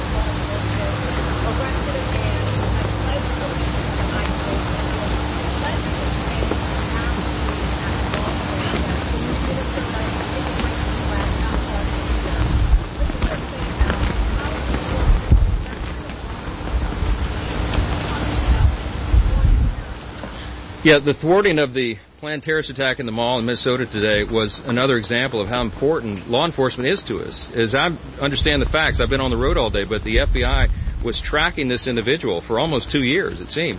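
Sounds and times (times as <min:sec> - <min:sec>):
steady wind blowing outdoors buffeting the microphone: 0:00.0 - 0:20.8, 0:27.9 - 0:32.1
faint murmur of voices: 0:00.0 - 0:33.7
speech: 0:20.8 - 0:33.7.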